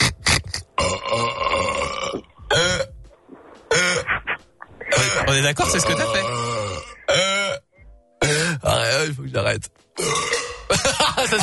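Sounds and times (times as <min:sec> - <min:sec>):
loud belches recorded into a microphone: 0:00.0 - 0:02.9, 0:03.7 - 0:04.0, 0:04.9 - 0:09.0, 0:10.0 - 0:10.8
speech: 0:05.4 - 0:06.5, 0:09.0 - 0:11.4.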